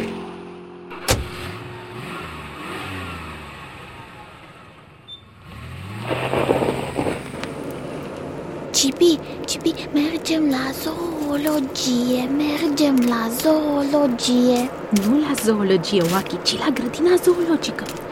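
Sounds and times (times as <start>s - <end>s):
family car engine revving and accelerating away: 0.0s - 9.4s
family car engine cranking to life: 0.0s - 10.9s
speech: 8.8s - 18.1s.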